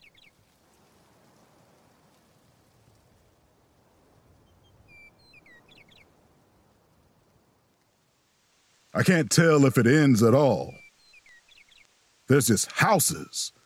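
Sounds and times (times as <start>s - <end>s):
steady hiss: 0.0s - 13.6s
bird calling in short bright whistled phrases: 4.6s - 6.0s, 10.7s - 11.9s
speech: 9.0s - 10.8s, 12.3s - 13.6s.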